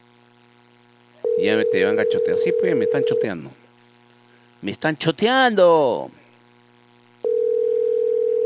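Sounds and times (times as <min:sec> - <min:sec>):
telephone busy-signal tone on an unanswered call: 0:01.2 - 0:03.3, 0:07.2 - 0:08.4
speech: 0:01.4 - 0:03.6, 0:04.6 - 0:06.2.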